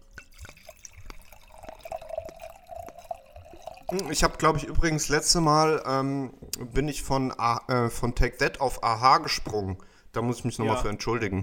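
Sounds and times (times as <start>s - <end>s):
wine pouring into a glass: 0.0s - 5.1s
speech: 3.9s - 11.4s.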